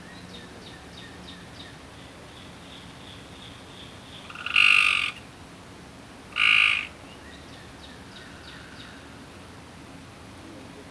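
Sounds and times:
quiet hiss: 0.0s - 10.8s
frog croaking: 4.2s - 5.2s, 6.3s - 7.0s.

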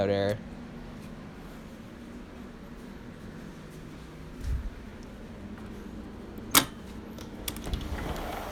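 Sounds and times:
speech: 0.0s - 0.5s
door creaking: 5.6s - 8.5s
door latch click: 6.3s - 8.4s.

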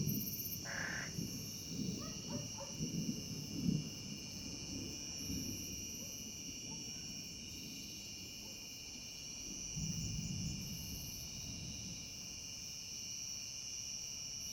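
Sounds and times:
thunder: 0.0s - 12.4s
cicada singing with high-pitched buzzing hum: 0.1s - 2.7s.

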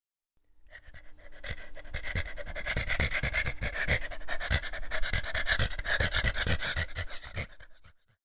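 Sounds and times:
dog panting: 0.7s - 8.2s.

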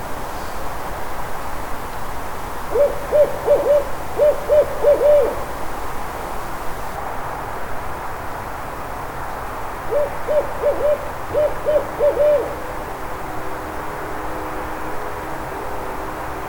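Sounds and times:
barred owl hooting in a backyard in Atlanta: 2.7s - 5.6s, 9.9s - 12.6s
speech: 2.8s - 4.0s.

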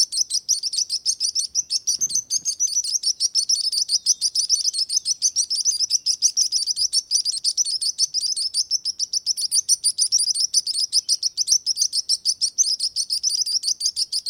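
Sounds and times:
sparrows chirping in a dense chorus of rapid high tweets: 0.0s - 14.2s.

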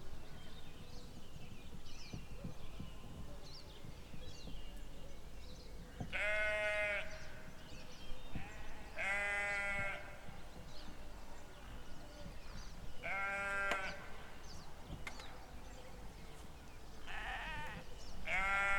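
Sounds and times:
sheep bleating in open land: 6.1s - 7.3s, 8.4s - 10.1s, 13.0s - 14.0s, 17.1s - 18.7s.

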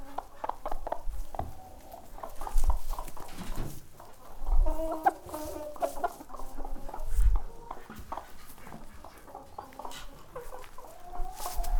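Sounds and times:
chickens clucking and squawking in a barn: 0.0s - 11.7s.

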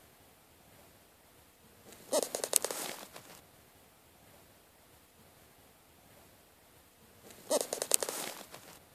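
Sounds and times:
bird wings flapping: 2.1s - 3.4s, 7.5s - 8.8s.

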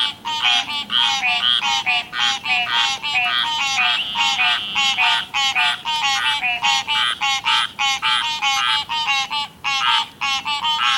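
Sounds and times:
frog croaks: 0.0s - 10.9s.

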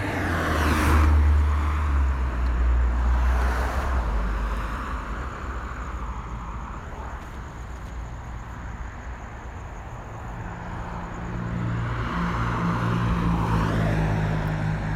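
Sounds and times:
cars revving and pulling away from a traffic light: 0.0s - 6.1s, 11.0s - 14.9s
steady traffic noise: 0.0s - 14.9s.

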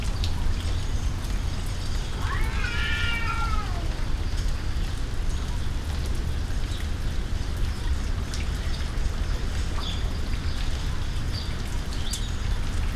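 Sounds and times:
heavy steady rain: 0.0s - 12.9s
domestic cat giving a drawn-out wavering yowl: 2.1s - 4.0s.

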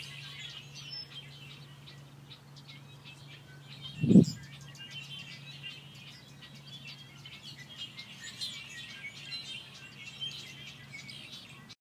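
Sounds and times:
low hum: 0.0s - 7.8s
birds chirping at an amphitheatre: 0.0s - 11.7s.

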